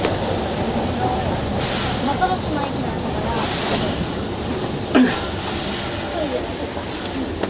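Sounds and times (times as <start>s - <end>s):
stopped railcar rumbling: 0.0s - 7.4s
faint voices: 0.5s - 7.4s
train doors opening with pneumatic hiss: 1.6s - 2.2s, 3.3s - 4.2s, 5.2s - 6.2s.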